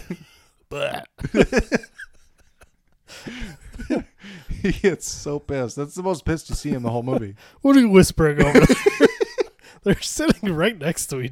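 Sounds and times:
speech: 0:00.1 - 0:01.9, 0:04.6 - 0:09.1, 0:09.8 - 0:11.2
gulping and grunting: 0:00.7 - 0:01.2
person burping: 0:00.7 - 0:01.4.

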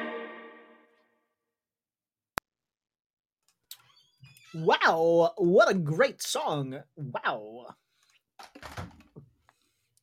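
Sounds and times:
speech: 0:04.5 - 0:07.8
door opening with a brief rattling rush: 0:08.4 - 0:09.1.

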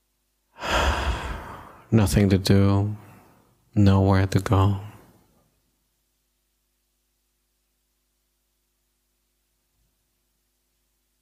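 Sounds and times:
slow deep breath into the belly: 0:00.5 - 0:01.9, 0:03.0 - 0:03.6
speech: 0:01.9 - 0:03.0, 0:03.8 - 0:04.9.

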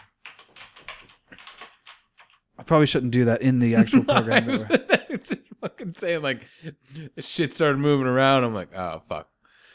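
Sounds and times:
fingers mashing a computer keyboard: 0:00.0 - 0:02.5
speech: 0:02.7 - 0:09.3
laughter: 0:03.6 - 0:07.3.

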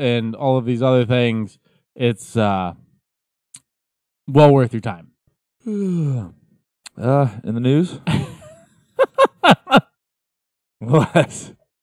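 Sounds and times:
speech: 0:00.0 - 0:02.8, 0:04.3 - 0:06.4, 0:07.0 - 0:08.3, 0:09.4 - 0:09.9, 0:10.8 - 0:11.6
loud drawn-out breathy yawn: 0:05.6 - 0:06.4
laughter: 0:08.1 - 0:09.9, 0:10.8 - 0:11.5.

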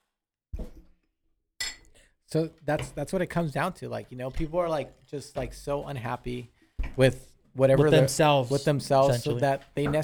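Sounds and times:
glasses clinking in a toast: 0:01.6 - 0:02.0
speech: 0:02.3 - 0:10.0.

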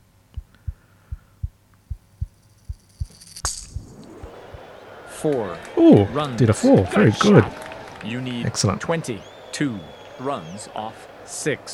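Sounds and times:
fast heartbeat sound effect in a game: 0:00.2 - 0:04.7
low hum: 0:00.2 - 0:06.2
brief bright electronic swish: 0:02.2 - 0:04.7
speech: 0:05.2 - 0:11.7.

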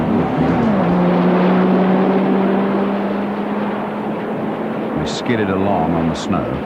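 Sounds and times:
rocket motors behind a car's rear lights firing: 0:00.0 - 0:06.6
speech: 0:05.3 - 0:06.6.

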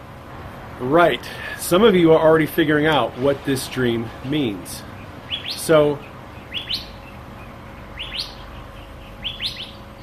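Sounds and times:
speech: 0:00.8 - 0:04.9, 0:05.6 - 0:06.1
bird chirping: 0:04.4 - 0:10.0.

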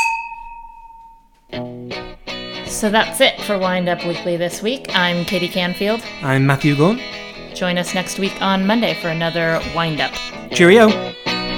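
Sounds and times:
wine glasses clinking in a toast: 0:00.0 - 0:01.3
speech: 0:01.6 - 0:01.8, 0:02.7 - 0:11.1.

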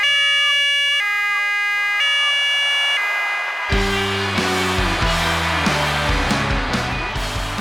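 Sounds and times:
ambulance siren wailing in stepped tones: 0:00.0 - 0:07.3.

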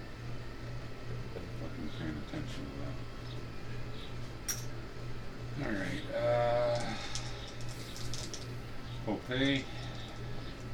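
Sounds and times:
steady low hum: 0:00.0 - 0:10.7
dice clattering and spinning across a tabletop: 0:06.8 - 0:08.5
speech: 0:09.3 - 0:09.8.

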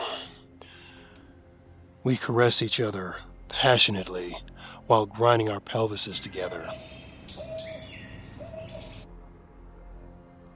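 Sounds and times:
hissy outdoor background: 0:00.0 - 0:10.5
speech: 0:02.0 - 0:07.0
owl hooting: 0:06.0 - 0:09.1.

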